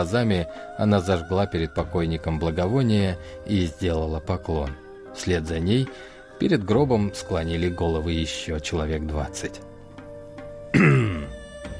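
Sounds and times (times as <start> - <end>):
speech: 0.0 - 9.7
man clearing his throat: 10.7 - 11.4.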